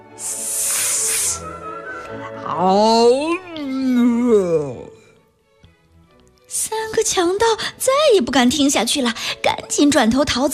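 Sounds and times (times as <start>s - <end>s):
voice imitating a snake hiss: 0.0s - 1.6s
speech: 0.2s - 0.4s, 2.1s - 3.9s, 7.1s - 10.5s.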